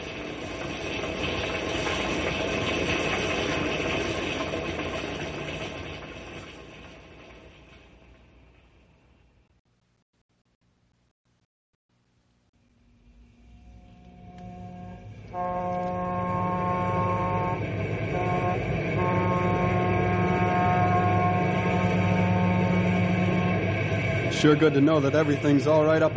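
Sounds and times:
passenger train running on the rails: 0.0 - 9.5, 12.8 - 26.1
sustained tonal whining: 12.5 - 26.1
speech: 24.4 - 26.1.

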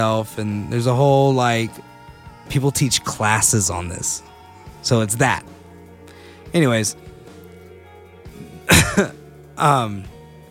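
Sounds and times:
speech: 0.0 - 1.9, 2.5 - 5.6, 6.5 - 7.1, 8.9 - 10.1
person coughing into the microphone: 8.4 - 9.1.

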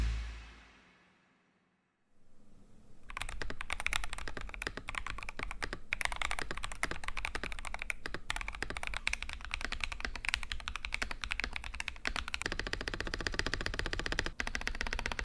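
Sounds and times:
typing on a mostly stock spray-painted red Razer mechanical keyboard: 3.1 - 15.2.

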